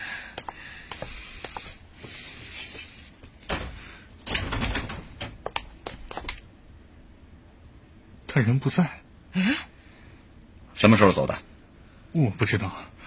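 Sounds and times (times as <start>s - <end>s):
keys rattling: 1.6s - 3.5s
speech: 8.4s - 9.7s, 10.8s - 11.5s, 12.1s - 12.9s.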